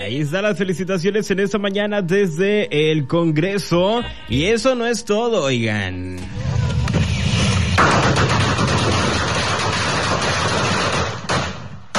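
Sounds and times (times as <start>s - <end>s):
speech: 0.0s - 6.6s
outdoor crowd noise: 0.0s - 9.4s
firecrackers exploding in celebration: 6.8s - 11.9s.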